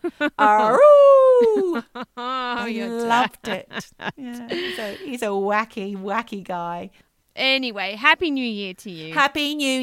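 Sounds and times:
speech: 0.2 - 0.9, 2.9 - 9.8
person imitating a dog howling and barking: 0.6 - 1.8.

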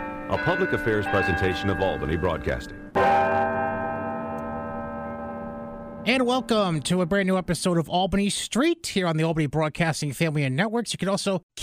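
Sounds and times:
large city hall tower bells ringing: 0.0 - 7.7
speech: 0.3 - 3.4, 6.0 - 11.6.

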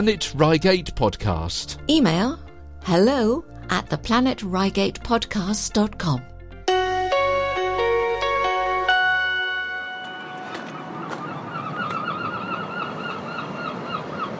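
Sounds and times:
speech: 0.0 - 6.3
bright chiming tone: 6.7 - 11.1
seagulls calling outside a train station: 10.1 - 14.3.

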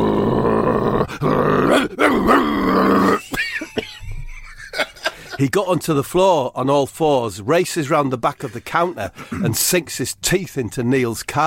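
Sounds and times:
man growling like a dog: 0.0 - 3.3
man grunting and huffing: 0.0 - 3.4, 9.1 - 9.6
speech: 1.1 - 3.2, 5.4 - 11.4
laughter: 3.2 - 5.5.

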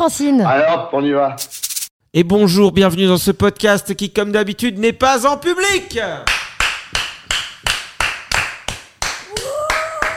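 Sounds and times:
speech: 0.0 - 6.4
small group of hosts clapping: 6.2 - 10.1
rising vocal whoop: 9.3 - 10.1.

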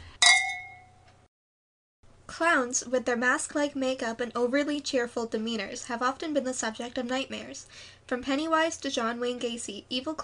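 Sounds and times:
wine glasses clinking in a toast: 0.1 - 1.0
speech: 2.3 - 10.2.

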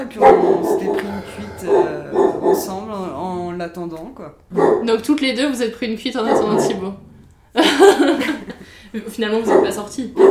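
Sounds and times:
dog barking: 0.0 - 2.8, 4.5 - 5.0, 6.2 - 7.0, 9.4 - 10.2
speech: 0.0 - 10.2
laughter: 7.6 - 8.8.

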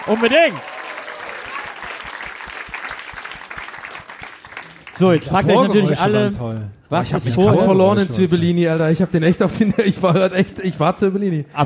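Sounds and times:
speech: 0.0 - 0.8, 5.0 - 11.6
live audience applause: 0.0 - 5.6
laughter: 9.4 - 10.8.

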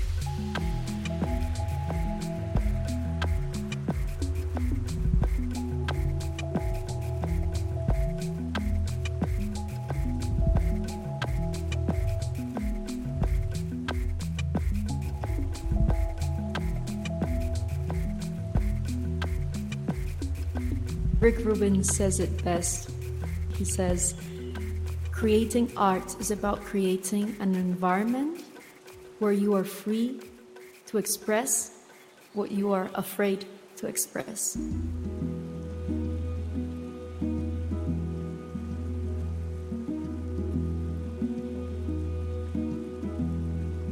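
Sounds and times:
deep repeating bass pattern: 0.0 - 27.7
looping beat of processed watery drips and squelches: 0.0 - 33.8, 34.6 - 43.8
speech: 21.3 - 22.9, 23.6 - 24.2, 25.2 - 28.4, 29.2 - 30.3, 30.9 - 31.7, 32.4 - 35.0.

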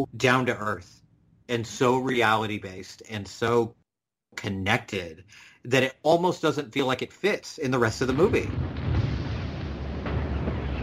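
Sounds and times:
speech: 0.0 - 8.8
bomb explosion in a wartime film: 7.9 - 10.8.

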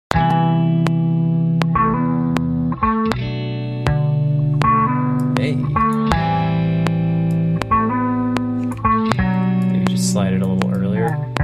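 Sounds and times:
guitar sample loop played at halftime with processed chords: 0.1 - 11.4.

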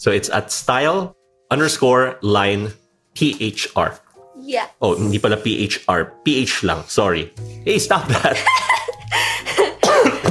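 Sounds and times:
speech: 0.0 - 9.6
laughter: 7.9 - 10.3
harsh raspy coughs: 9.5 - 10.3.

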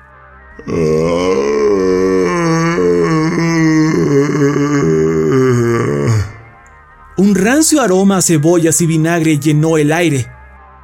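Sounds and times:
speech: 0.6 - 1.6, 7.6 - 10.3
hoarse guttural croaking throat groan from a human voice: 0.6 - 6.7.

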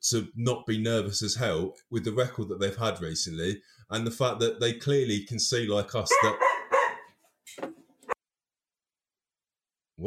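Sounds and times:
speech: 0.0 - 6.6
dog barking: 6.1 - 7.2.

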